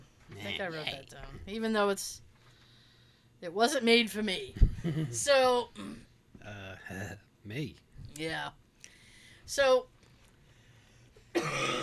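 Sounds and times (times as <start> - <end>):
speech: 0.4 - 2.2, 3.4 - 8.6, 9.5 - 9.9, 11.4 - 11.8
harsh raspy cough: 11.3 - 11.8.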